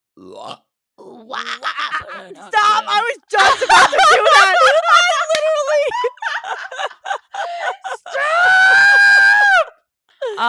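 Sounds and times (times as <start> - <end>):
person burping loudly: 0.2 - 2.5
speech: 0.2 - 6.9
laughter: 1.4 - 9.7.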